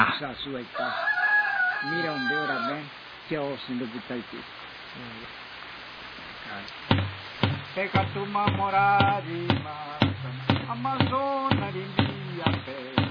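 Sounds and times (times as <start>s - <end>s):
speech: 0.0s - 1.2s, 1.8s - 5.4s, 6.4s - 7.1s, 7.8s - 13.0s
faint hiss: 0.0s - 13.0s
rooster crowing loudly: 0.7s - 2.9s.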